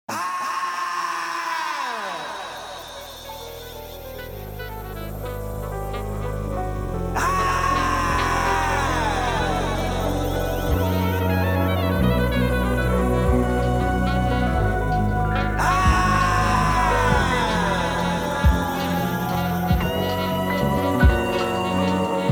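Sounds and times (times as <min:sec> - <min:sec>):
anguished drawn-out screams: 0:00.1 - 0:04.4, 0:07.2 - 0:22.3
saxophone flourishes: 0:02.4 - 0:22.3.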